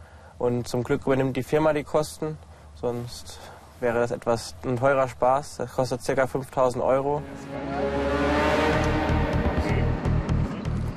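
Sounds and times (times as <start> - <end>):
speech: 0.4 - 8.0
heavy truck engine revving: 7.2 - 10.9.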